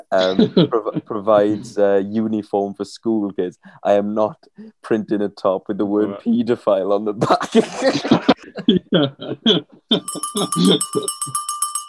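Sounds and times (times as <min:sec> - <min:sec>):
laughter: 0:00.0 - 0:01.8, 0:07.2 - 0:11.2
speech: 0:00.1 - 0:11.4
bell ringing in quick strikes: 0:10.0 - 0:11.8.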